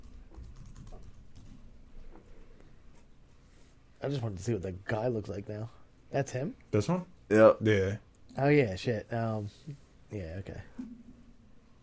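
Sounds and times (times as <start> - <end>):
typing on a computer keyboard: 0.0 - 1.6
speech: 4.0 - 11.1.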